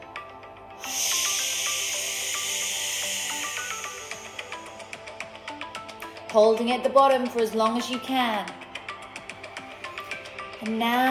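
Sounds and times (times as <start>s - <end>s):
long exhaling breath during a guided breathing exercise: 0.8s - 6.2s
speech: 6.3s - 8.6s, 10.6s - 11.0s.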